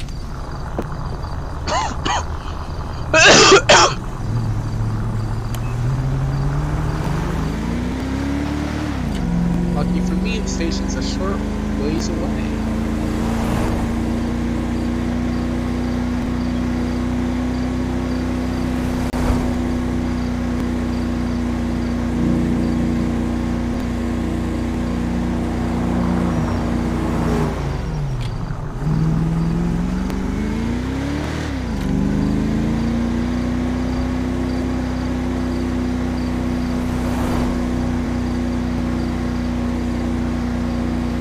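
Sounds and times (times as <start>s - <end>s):
police cruiser engine driving: 0.0s - 41.2s.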